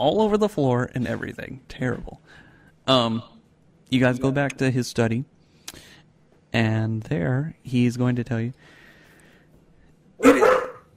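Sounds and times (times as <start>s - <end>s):
speech: 0.0s - 5.9s, 6.5s - 8.8s, 10.2s - 10.6s
dog barking: 10.2s - 10.9s.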